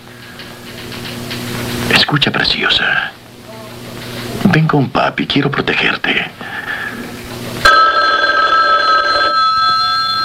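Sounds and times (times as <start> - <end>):
speech: 2.1 - 3.2, 4.5 - 6.6
telephone bell ringing: 7.6 - 10.2.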